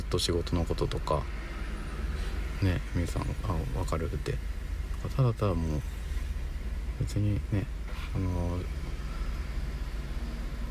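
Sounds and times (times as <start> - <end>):
continuous hiss of traffic noise: 0.0 - 10.6
low rumble of car engines moving slowly: 0.0 - 10.6
speech: 0.1 - 1.6, 2.6 - 6.0, 7.0 - 8.8.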